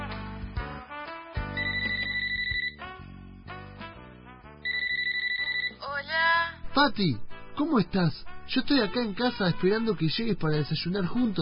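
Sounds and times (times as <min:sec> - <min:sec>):
phone ringing with repeating electronic melody during outgoing call: 0:01.5 - 0:02.8, 0:04.6 - 0:06.1
speech: 0:06.8 - 0:11.4.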